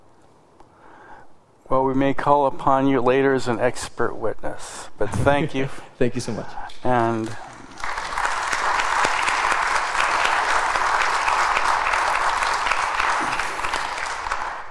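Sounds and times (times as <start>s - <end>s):
speech: 1.9s - 7.5s
audience applause at a council meeting: 7.0s - 14.6s.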